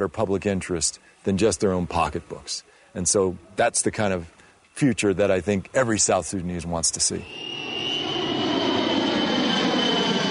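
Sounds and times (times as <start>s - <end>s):
speech: 0.0s - 7.5s
airplane engine roar with a high whine flying overhead: 7.2s - 10.2s.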